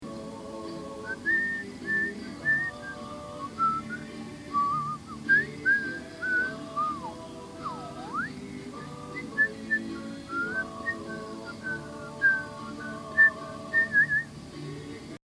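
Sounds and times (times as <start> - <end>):
whistle at an airport: 1.1 - 14.3.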